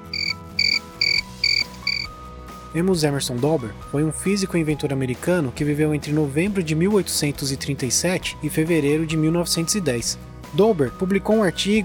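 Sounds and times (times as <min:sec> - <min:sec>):
cricket chirping: 0:00.0 - 0:02.1
soft low background: 0:00.0 - 0:02.1
speech: 0:02.7 - 0:11.8.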